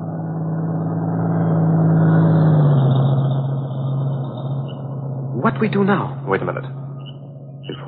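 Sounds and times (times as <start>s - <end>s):
broadband road noise: 0.0s - 7.8s
heavy engine of a road vehicle droning: 0.0s - 7.8s
speech: 5.6s - 6.8s.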